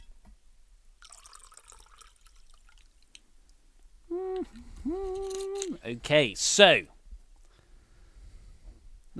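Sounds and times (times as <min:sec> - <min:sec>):
wine pouring into a glass: 0:01.0 - 0:03.0
speech: 0:04.5 - 0:06.9.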